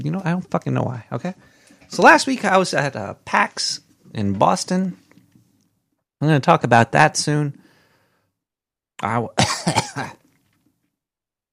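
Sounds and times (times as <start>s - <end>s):
speech: 0.0s - 5.0s, 6.2s - 7.6s, 9.0s - 10.2s
faint breath: 1.4s - 1.9s, 7.6s - 8.4s
person with a lingering cough coughing: 9.4s - 10.2s.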